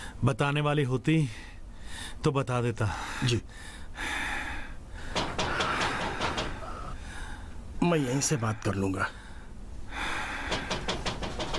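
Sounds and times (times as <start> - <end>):
hiss: 0.0 - 11.5
speech: 0.2 - 3.8, 7.8 - 9.2
knocking on a door: 5.1 - 6.7, 10.5 - 11.5.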